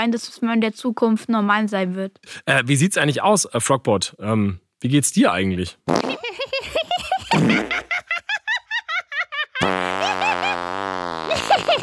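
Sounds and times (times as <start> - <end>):
speech: 0.0 - 6.5
long loud buzzing raspberry: 5.9 - 6.2, 7.3 - 7.9, 9.6 - 11.8
short squeaky fart noises: 5.9 - 6.2, 7.3 - 7.9, 9.6 - 11.8
laughter: 6.2 - 10.6, 11.3 - 11.8.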